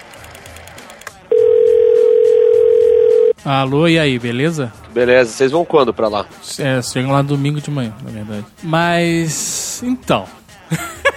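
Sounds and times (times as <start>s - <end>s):
telephone dial tone while placing a call: 0.5s - 3.4s
speech: 3.4s - 10.9s
laughter: 10.6s - 11.1s.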